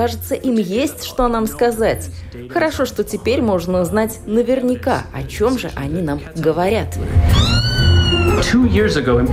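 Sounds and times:
speech: 0:00.0 - 0:07.6, 0:08.4 - 0:09.3
cat meowing: 0:07.2 - 0:08.6.

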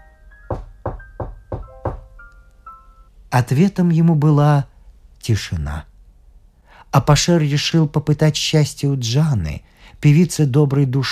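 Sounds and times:
faint steady hum: 0:00.0 - 0:11.1
knuckles rapping on a door: 0:00.5 - 0:02.1
speech: 0:03.3 - 0:05.9, 0:06.9 - 0:11.1.

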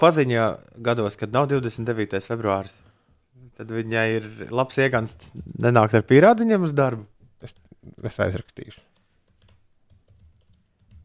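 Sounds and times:
speech: 0:00.0 - 0:02.9, 0:03.5 - 0:08.9
typing on a computer keyboard: 0:08.9 - 0:11.0.

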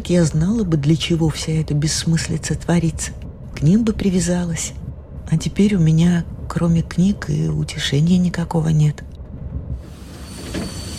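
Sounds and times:
train rumbling along the rails: 0:00.0 - 0:10.9
speech: 0:00.1 - 0:09.1
train braking wheels squealing: 0:10.0 - 0:10.9.

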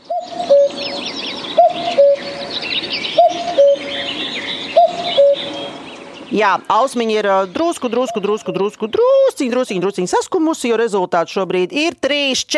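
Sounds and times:
common cuckoo calling: 0:00.0 - 0:09.4
smaller birds chirping and trilling: 0:00.0 - 0:10.1
speech: 0:06.4 - 0:12.5.

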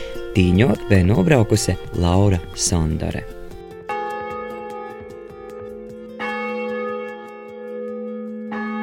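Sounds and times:
speech: 0:00.4 - 0:03.4
large church bell in Latvia tolling to call people to a church night event: 0:03.9 - 0:08.8.

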